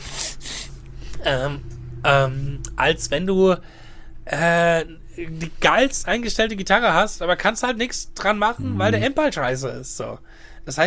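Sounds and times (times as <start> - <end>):
person sniffling from a cold: 0.0 - 0.8
faint low hum: 0.0 - 10.8
speech: 1.2 - 10.8
brief voiced murmur: 8.6 - 9.2.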